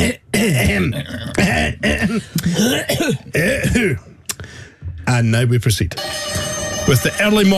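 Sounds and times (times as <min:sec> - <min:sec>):
person clearing throat: 0:00.0 - 0:04.1
speech: 0:00.1 - 0:04.1, 0:05.1 - 0:07.5.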